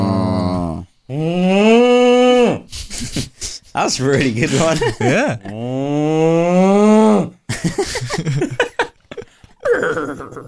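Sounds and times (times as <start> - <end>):
person imitating a cow moo: 0.0 - 2.7, 5.5 - 7.4
speech: 1.1 - 1.4, 3.8 - 6.4, 7.6 - 8.6
laughter: 2.7 - 5.6, 7.5 - 10.4.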